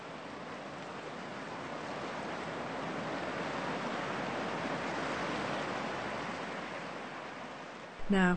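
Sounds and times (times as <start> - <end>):
rushing water sound effect: 0.0 - 8.3
speech: 8.1 - 8.3.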